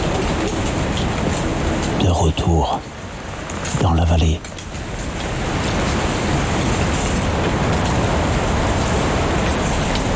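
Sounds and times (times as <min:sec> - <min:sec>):
wind rustling through falling leaves: 0:00.0 - 0:10.1
speech: 0:02.0 - 0:02.9, 0:03.8 - 0:04.5.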